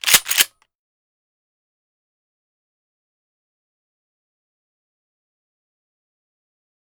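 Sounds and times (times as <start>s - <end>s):
Mossberg M500 pump action shotgun racking: 0.0s - 0.5s.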